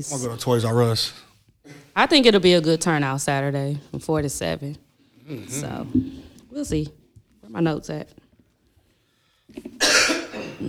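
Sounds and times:
speech: 0.0s - 1.3s, 2.0s - 8.2s
person with a harsh hacking cough: 9.8s - 10.6s.

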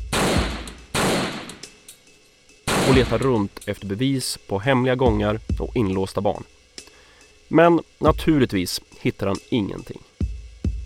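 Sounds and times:
gunshots from an automatic carbine: 0.0s - 1.8s, 2.7s - 3.5s
speech: 2.9s - 6.6s, 7.5s - 10.1s.

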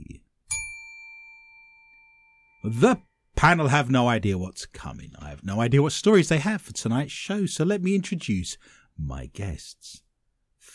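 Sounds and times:
single bright bell ding: 0.5s - 2.7s
speech: 2.6s - 10.0s.

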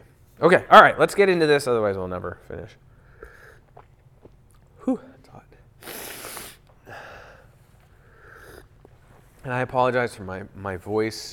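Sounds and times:
speech: 0.4s - 2.9s, 4.8s - 5.1s, 9.4s - 11.3s
sniffling through a stuffy nose: 5.8s - 9.4s.

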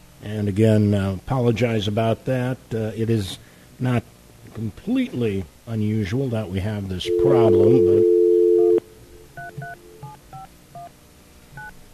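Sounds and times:
speech: 0.2s - 8.2s
telephone dialing tones as a phone number is keyed in: 7.1s - 8.8s.

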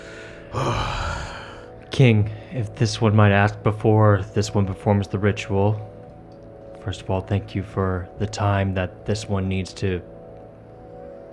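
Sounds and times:
heavy slow calm breath: 0.0s - 2.6s
speech: 0.5s - 1.0s, 2.0s - 5.9s, 6.8s - 10.1s.

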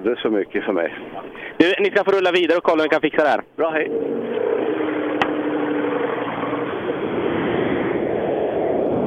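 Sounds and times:
speech: 0.0s - 4.3s
Porsche car engine at full throttle: 3.9s - 8.1s.

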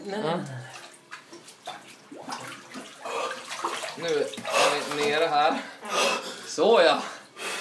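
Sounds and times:
speech: 0.0s - 0.8s, 4.0s - 7.2s
water sloshing and splashing in a cold bath as a person gets in: 0.0s - 7.4s.

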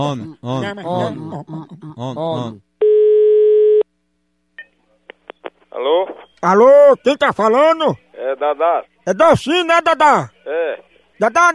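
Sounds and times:
speech: 0.0s - 2.7s, 5.8s - 11.5s
ringback tone on an outgoing telephone call: 2.8s - 3.8s.

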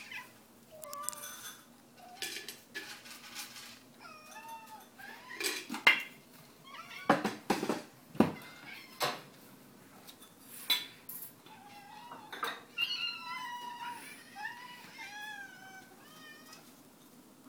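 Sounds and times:
several cats meowing in the morning: 0.0s - 2.6s, 3.9s - 9.5s, 11.3s - 16.9s
clattering and rustling noise: 0.8s - 11.4s.

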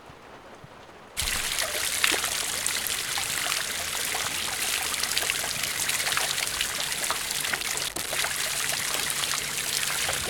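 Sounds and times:
water trickling and splashing in a church fountain: 1.2s - 10.2s.

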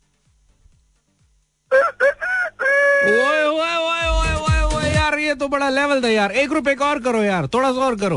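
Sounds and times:
person imitating a rooster crowing: 1.7s - 4.9s
speech: 5.3s - 8.1s.

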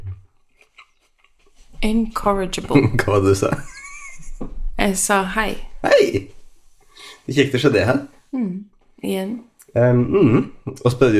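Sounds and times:
person chewing a bite of apple: 0.0s - 1.7s
speech: 1.8s - 3.7s, 4.9s - 6.4s, 7.3s - 11.1s
laughter: 3.2s - 4.5s.

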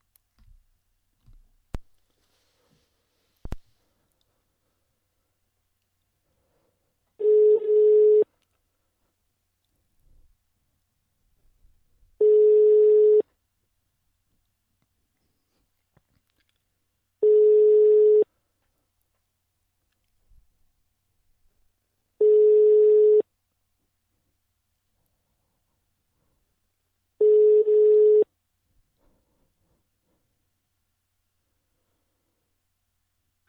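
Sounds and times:
telephone ringback tone while a call is placed: 7.2s - 8.2s, 12.2s - 13.2s, 17.2s - 18.2s, 22.2s - 23.2s, 27.2s - 28.3s.

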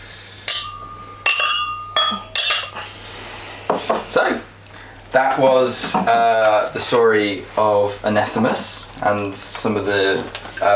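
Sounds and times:
glasses clinking in a toast after reviewing a wine: 0.5s - 2.8s
speech: 4.1s - 4.5s, 5.2s - 10.7s.

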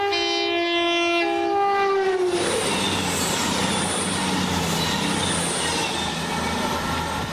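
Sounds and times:
loud sustained train horn blast: 0.0s - 3.1s
train passing with rumbling wheels and rattling carriages: 1.2s - 7.3s.

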